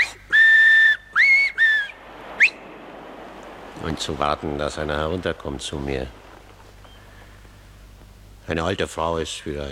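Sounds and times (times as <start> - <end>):
loud shrill finger whistles at midday: 0.0 - 2.6
speech: 3.9 - 6.2, 8.5 - 9.7.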